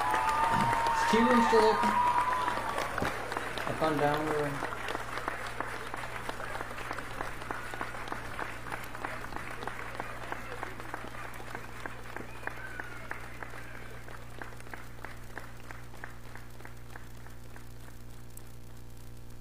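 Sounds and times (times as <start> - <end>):
crowd applauding for veterans: 0.0 - 18.2
low electrical hum: 0.0 - 19.3
speech: 1.1 - 2.1, 3.8 - 4.8.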